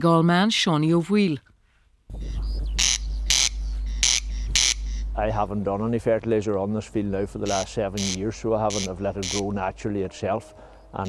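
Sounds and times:
speech: 0:00.0 - 0:01.5, 0:05.2 - 0:11.0
constant low rumble: 0:02.0 - 0:11.0
corncrake calling: 0:02.1 - 0:05.6, 0:07.1 - 0:09.8, 0:10.6 - 0:11.0.

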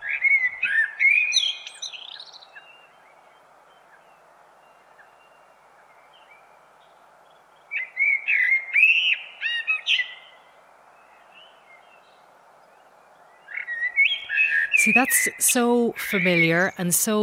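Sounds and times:
blackbird singing rich fluting phrases: 0:00.0 - 0:07.0, 0:07.7 - 0:10.4, 0:13.2 - 0:17.2
low steady hiss: 0:00.0 - 0:17.2
speech: 0:14.8 - 0:17.2.

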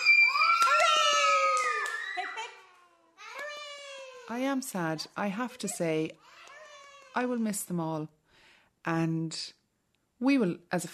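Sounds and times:
group of children cheering for children who are leaving: 0:00.0 - 0:04.2
speech: 0:04.3 - 0:06.4, 0:07.2 - 0:08.2, 0:08.8 - 0:09.6, 0:10.2 - 0:10.9.

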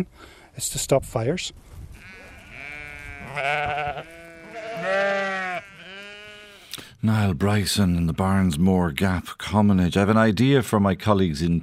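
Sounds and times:
speech: 0:00.0 - 0:01.8, 0:03.4 - 0:04.2, 0:07.0 - 0:11.6
sheep bleating on hill commonage in the Barnsmore Gap, Ireland: 0:02.0 - 0:06.7.

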